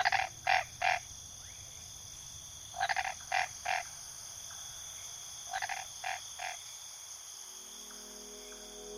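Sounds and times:
toad croaking in a marsh: 0:00.0 - 0:01.2, 0:02.7 - 0:04.0, 0:05.5 - 0:06.7.

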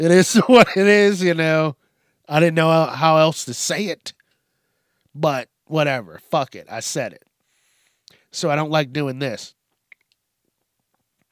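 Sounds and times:
speech: 0:00.0 - 0:04.2, 0:05.2 - 0:07.3, 0:08.3 - 0:09.6
wet mouth noises with saliva clicks and swallowing: 0:09.9 - 0:10.2.

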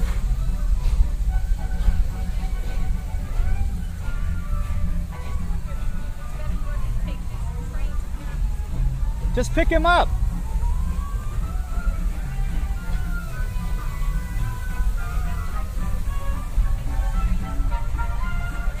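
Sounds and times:
people talking faintly: 0:00.0 - 0:18.7
train rumbling past: 0:00.0 - 0:18.7
speech: 0:09.4 - 0:10.2.

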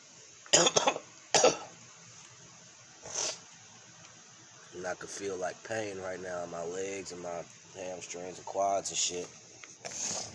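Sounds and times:
harsh rattling cough: 0:00.5 - 0:01.7
speech: 0:04.9 - 0:10.2.

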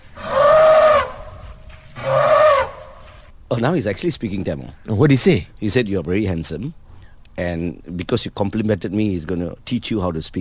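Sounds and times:
elephant trumpeting call: 0:00.0 - 0:03.3
speech: 0:03.5 - 0:06.8, 0:07.4 - 0:10.4.

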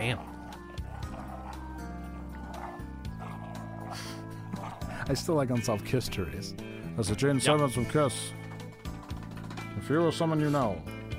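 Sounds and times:
speech: 0:00.0 - 0:00.3, 0:05.1 - 0:08.4, 0:09.9 - 0:10.9
dog barking: 0:00.0 - 0:05.1
steady droning musical backing: 0:00.0 - 0:11.1.

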